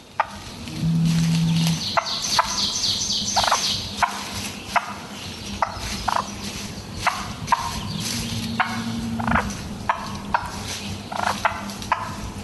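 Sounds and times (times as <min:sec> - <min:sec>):
hen turkey purring: 0:00.3 - 0:02.6, 0:07.1 - 0:12.1
hen turkey clucking: 0:03.4 - 0:05.0, 0:05.6 - 0:06.3, 0:07.0 - 0:12.2.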